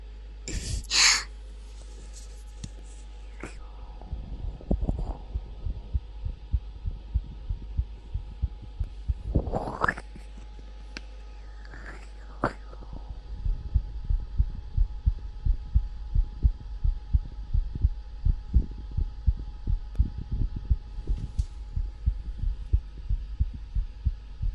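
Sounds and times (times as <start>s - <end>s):
fast heartbeat through a chest: 3.8s - 10.0s, 12.7s - 24.5s.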